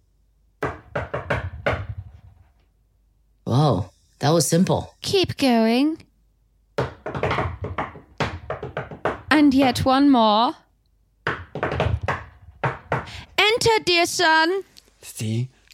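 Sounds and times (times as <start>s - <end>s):
secret knock on a wooden door of a home: 0.6s - 2.3s, 6.8s - 10.1s, 11.2s - 13.2s
speech: 3.5s - 6.1s, 9.4s - 10.6s, 13.6s - 15.7s.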